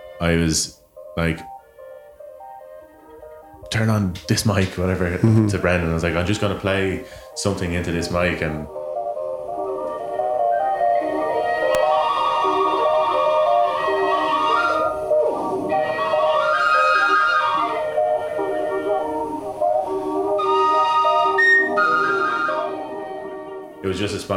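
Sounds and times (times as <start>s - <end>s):
speech: 0.2s - 1.5s, 3.7s - 8.8s, 24.0s - 24.3s
whistles played through a movable whistle drone: 9.6s - 23.8s.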